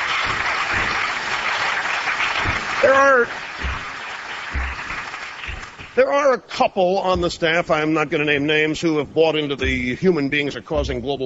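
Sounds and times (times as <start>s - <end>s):
crowd applauding: 0.0s - 6.0s
speech: 2.8s - 3.5s, 6.0s - 11.2s.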